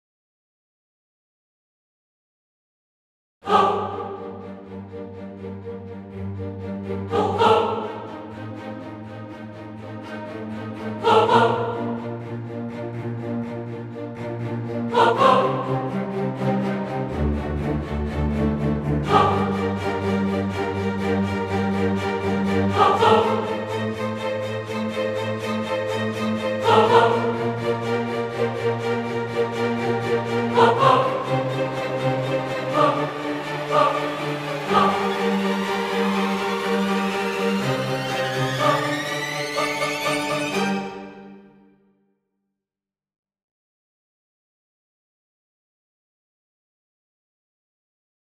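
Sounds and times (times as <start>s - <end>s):
choir: 3.4s - 41.6s
strings: 3.5s - 41.7s.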